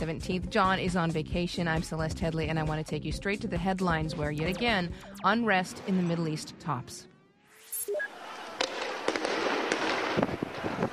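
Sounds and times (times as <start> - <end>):
speech: 0.0 - 7.1
sharp bangs and pops of rubber bullets and tear gas as riot police clear a square: 8.6 - 10.9.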